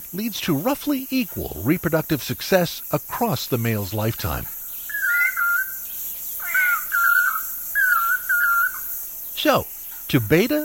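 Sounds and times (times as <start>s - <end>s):
speech: 0.1s - 4.6s, 9.4s - 10.6s
Lance-tailed Manakin whistled calls with wavering pitch: 4.8s - 5.8s, 6.4s - 8.9s.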